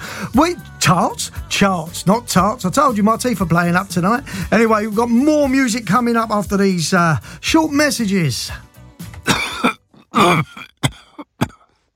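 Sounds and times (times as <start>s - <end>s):
speech: 0.2s - 8.6s
person coughing in harsh raspy bursts: 9.2s - 11.8s.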